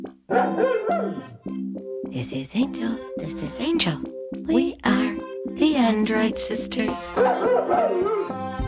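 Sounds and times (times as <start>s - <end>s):
dog barking: 0.3s - 1.5s, 7.1s - 8.5s
speech: 2.2s - 5.0s, 5.9s - 8.4s.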